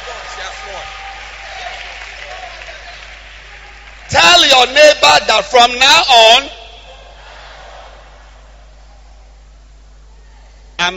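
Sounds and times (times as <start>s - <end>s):
audience applause: 0.0s - 4.9s
speech: 4.6s - 6.6s.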